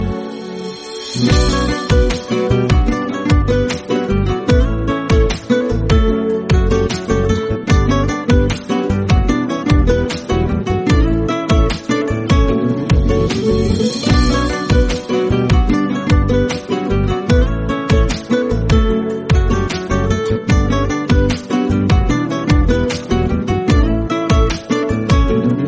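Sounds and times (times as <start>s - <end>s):
Iranian-tone guitar ringtone: 0.0s - 25.6s.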